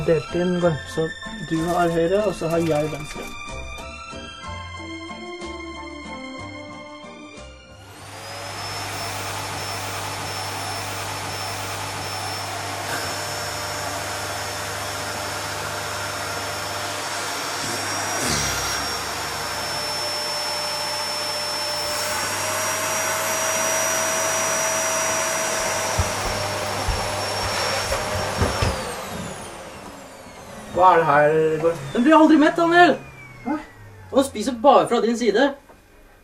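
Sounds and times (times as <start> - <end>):
speech: 0.0 - 3.5, 30.8 - 35.6
vacuum cleaner running: 0.0 - 4.3, 7.7 - 36.2.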